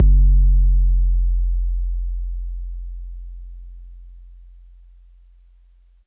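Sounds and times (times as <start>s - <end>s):
808 bass drum from an MPC60 with noise in F: 0.0s - 3.1s.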